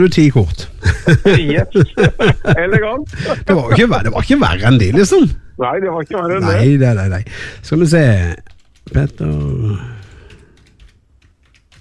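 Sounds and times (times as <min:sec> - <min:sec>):
speech: 0:00.0 - 0:10.0
laughter: 0:00.7 - 0:05.2
one-finger typing on a computer keyboard: 0:08.5 - 0:11.7.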